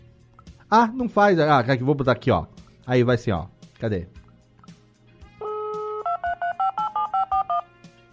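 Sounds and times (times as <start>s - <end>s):
speech: 0.7s - 4.2s
steady dual-tone landline telephone beep: 5.4s - 7.7s.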